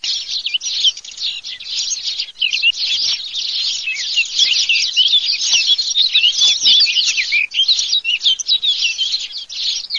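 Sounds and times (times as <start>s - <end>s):
blackcap: 0.0s - 9.9s
sparrows: 0.0s - 9.9s.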